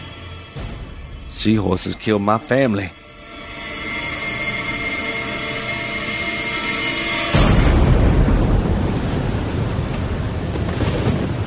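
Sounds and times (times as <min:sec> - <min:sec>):
speech: 0:01.3 - 0:03.0
rain hissing: 0:04.1 - 0:11.4
thunder of an approaching storm: 0:07.3 - 0:11.4.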